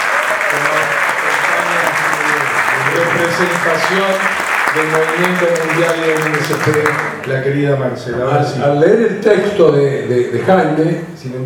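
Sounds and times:
audience applause at a health movement's assembly: 0:00.0 - 0:07.4
speech: 0:03.4 - 0:11.4.

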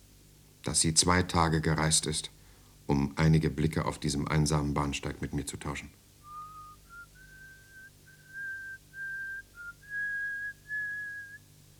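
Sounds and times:
speech: 0:00.6 - 0:06.0
woman whistling a thin trembling tune on a lonely railway platform: 0:06.2 - 0:11.5.

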